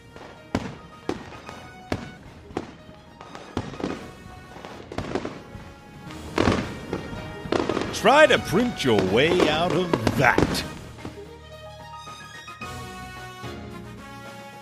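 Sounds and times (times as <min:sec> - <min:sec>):
TV camera eyes exploding in sparks and smoke: 0:00.0 - 0:11.3
speech: 0:08.0 - 0:10.8.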